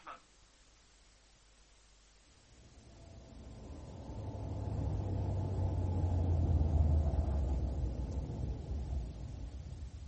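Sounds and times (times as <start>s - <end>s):
car engine rumbling as the car drives up and stops: 2.5s - 10.0s.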